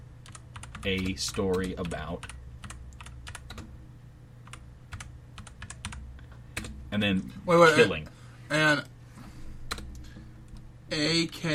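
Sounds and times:
low steady hum: 0:00.0 - 0:11.5
typing a prompt on a computer keyboard: 0:00.2 - 0:03.7, 0:04.4 - 0:06.0, 0:09.7 - 0:10.0
speech: 0:00.8 - 0:02.4, 0:07.0 - 0:08.9, 0:10.9 - 0:11.5.

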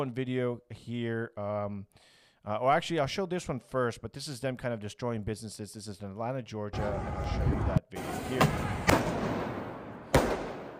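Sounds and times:
speech: 0:00.0 - 0:08.9
firework going off during street unrest: 0:08.6 - 0:10.7.

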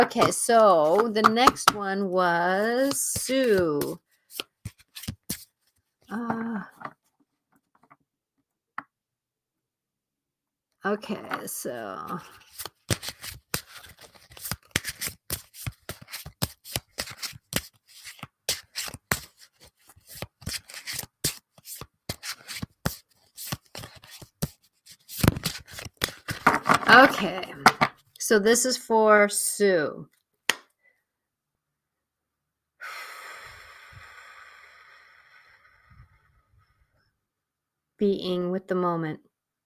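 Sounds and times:
deck of dragon oracle cards being shuffled and handled: 0:00.0 - 0:01.8, 0:02.6 - 0:05.9, 0:12.1 - 0:28.0
speech: 0:00.0 - 0:04.5, 0:06.1 - 0:07.0, 0:10.8 - 0:12.7, 0:26.9 - 0:30.2, 0:38.0 - 0:39.3.

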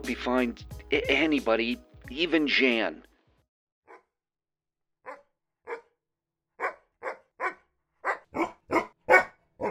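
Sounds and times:
speech: 0:00.0 - 0:03.1
male dog barking: 0:05.0 - 0:06.0, 0:06.6 - 0:09.6.

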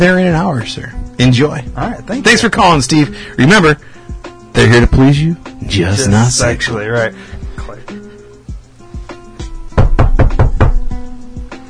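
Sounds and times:
speech: 0:00.0 - 0:08.0
knocking on a door: 0:09.7 - 0:11.0.

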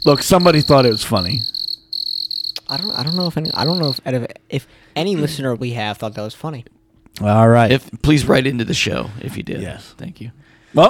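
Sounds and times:
speech: 0:00.0 - 0:01.6, 0:02.7 - 0:10.8
cricket chirping: 0:00.0 - 0:04.1.

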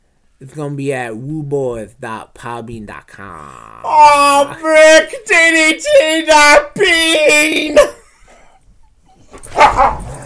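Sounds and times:
speech: 0:00.4 - 0:08.0, 0:09.5 - 0:10.1
dog barking: 0:09.5 - 0:10.2.

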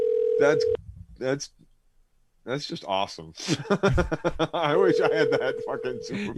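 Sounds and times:
outgoing phone call electronic ringing tone: 0:00.0 - 0:00.8, 0:04.8 - 0:06.1
speech: 0:00.4 - 0:01.6, 0:02.4 - 0:06.3
laughter: 0:03.4 - 0:06.3.

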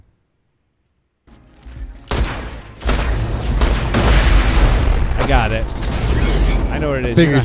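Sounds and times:
video game shotgun firing: 0:02.1 - 0:06.2
video game rumbling explosions: 0:02.1 - 0:07.2
speech: 0:05.3 - 0:05.8, 0:06.7 - 0:07.4.

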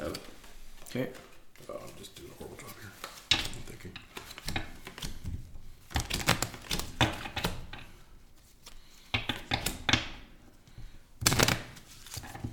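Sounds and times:
game cards being shuffled: 0:00.0 - 0:10.0, 0:11.2 - 0:12.5
speech: 0:00.9 - 0:01.3.

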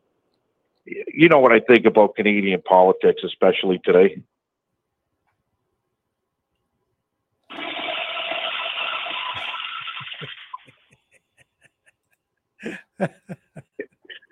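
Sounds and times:
speech: 0:00.9 - 0:04.3, 0:12.6 - 0:13.7
toilet flushing with a rushing roar: 0:07.5 - 0:10.7
bursts of laughter: 0:09.4 - 0:14.3.

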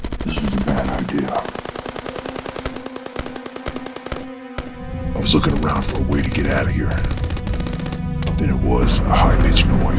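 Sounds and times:
heavy automatic gunfire from several shooters in a firefight: 0:00.0 - 0:04.7, 0:07.0 - 0:08.0
speech: 0:00.8 - 0:01.6, 0:05.2 - 0:07.2, 0:08.4 - 0:09.9.

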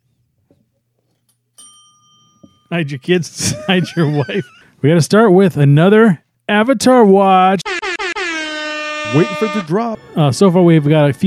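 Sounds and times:
notification bell ding: 0:01.6 - 0:03.1
speech: 0:02.7 - 0:07.6, 0:09.1 - 0:11.2
laughter: 0:03.2 - 0:04.8.

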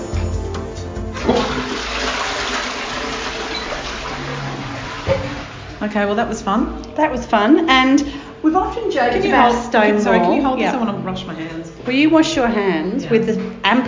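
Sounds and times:
toilet flushing in a downstairs bar restroom: 0:00.1 - 0:06.4
speech: 0:05.9 - 0:13.8.

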